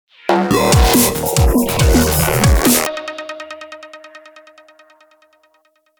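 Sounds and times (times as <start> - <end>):
dubstep music logo: 0.2 - 3.8.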